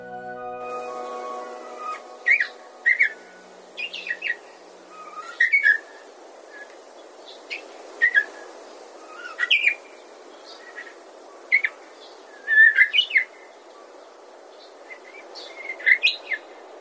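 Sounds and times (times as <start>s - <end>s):
steady low hiss: 0.0s - 16.7s
Japanese bush warbler singing a faltering song in a quiet forest: 0.7s - 4.4s.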